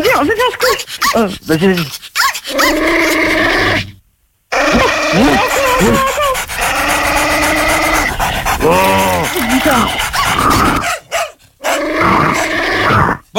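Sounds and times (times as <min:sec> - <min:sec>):
dog panting: 0:00.0 - 0:03.2, 0:04.6 - 0:12.5
speech: 0:00.1 - 0:03.9, 0:04.7 - 0:06.1
dog growling after being let loose on people fleeing: 0:00.3 - 0:13.3
dog barking: 0:02.2 - 0:03.2, 0:04.6 - 0:12.6.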